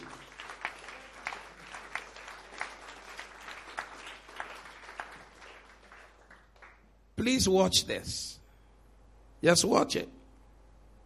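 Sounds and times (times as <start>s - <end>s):
audience clapping in a steady rhythmic beat: 0.0s - 7.1s
speech: 7.2s - 8.3s, 9.4s - 10.2s.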